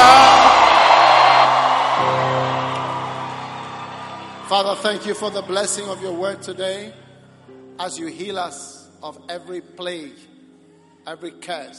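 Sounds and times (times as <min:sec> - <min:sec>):
large crowd screaming and whooping: 0:00.0 - 0:05.6
speech: 0:04.5 - 0:07.0, 0:07.8 - 0:10.3, 0:11.0 - 0:11.7.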